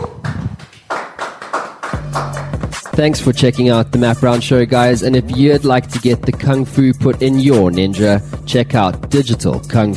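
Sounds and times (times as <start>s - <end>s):
hands clapping: 0.0s - 3.3s
speech: 3.0s - 9.9s.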